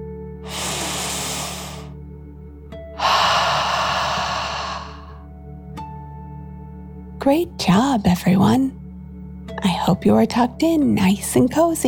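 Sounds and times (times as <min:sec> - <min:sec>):
person taking deep slow breaths during a bedtime relaxation exercise: 0:00.4 - 0:02.0, 0:03.0 - 0:05.3
speech: 0:07.2 - 0:08.8, 0:09.8 - 0:11.8.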